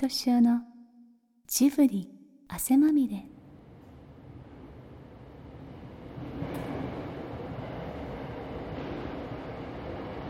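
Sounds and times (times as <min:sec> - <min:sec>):
speech: 0:00.0 - 0:00.7, 0:01.5 - 0:03.4
subway train rumbling through a station: 0:03.4 - 0:10.2.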